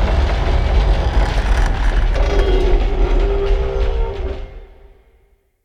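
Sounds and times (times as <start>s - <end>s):
big asteroid ship groans: 0.2s - 4.7s.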